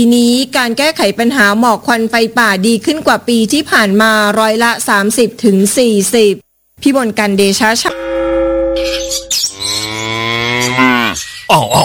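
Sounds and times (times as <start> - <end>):
speech: 0.0 - 8.2, 8.8 - 11.8
water buffalo lowing: 9.3 - 11.3.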